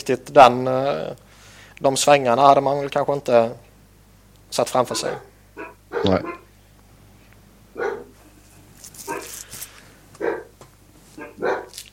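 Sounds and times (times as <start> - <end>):
speech: 0.0 - 1.2, 1.8 - 3.7, 4.5 - 6.4
low steady hum: 0.0 - 11.9
several dogs barking in the background: 4.8 - 6.6, 7.7 - 8.3, 9.0 - 9.4, 10.2 - 11.8.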